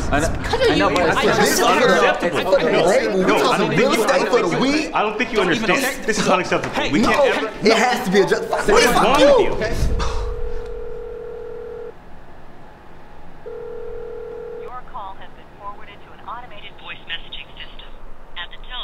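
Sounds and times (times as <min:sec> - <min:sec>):
speech: 0:00.1 - 0:10.2
ringback tone of an outgoing phone call sent to voicemail: 0:08.2 - 0:09.3, 0:10.3 - 0:12.0, 0:13.4 - 0:14.7.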